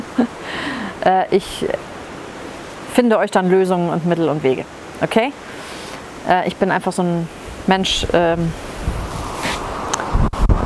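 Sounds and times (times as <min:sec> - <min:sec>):
speech: 0:01.0 - 0:01.8, 0:03.0 - 0:05.5, 0:06.2 - 0:08.6
wind buffeting a microphone: 0:07.4 - 0:10.6.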